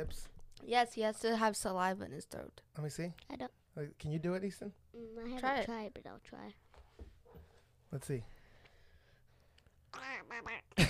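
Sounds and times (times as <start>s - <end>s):
speech: 0.0s - 6.6s, 7.9s - 8.4s, 10.0s - 10.8s
person imitating nasal raspy duck quacks: 9.9s - 10.8s.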